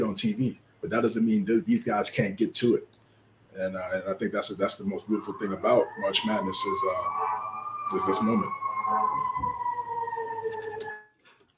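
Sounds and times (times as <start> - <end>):
speech: 0.1 - 3.0, 3.6 - 7.3, 7.9 - 9.5
siren: 4.6 - 11.2.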